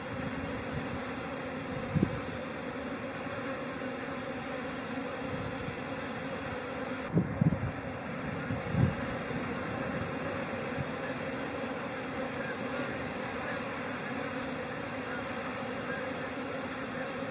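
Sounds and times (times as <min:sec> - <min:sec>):
bees buzzing at a busy hive entrance: 0:00.0 - 0:17.2.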